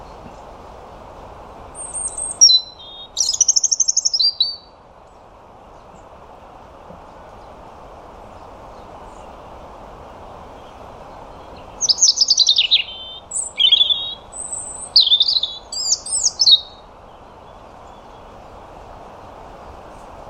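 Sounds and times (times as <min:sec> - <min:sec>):
background hiss: 0:00.0 - 0:20.2
European robin song with high warbled notes and trills: 0:01.2 - 0:20.2.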